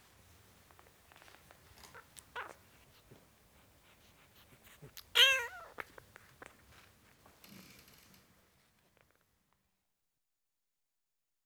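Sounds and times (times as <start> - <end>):
four-week-old domestic kitten mewing: 4.6 - 6.0.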